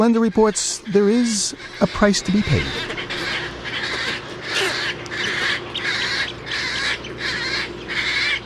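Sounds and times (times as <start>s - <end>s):
speech: 0.0s - 3.1s
herons, egrets, roseate spoonbills and wood storks squawking in a nesting rookery: 0.0s - 8.4s
low hum of the bird colony: 0.0s - 8.4s.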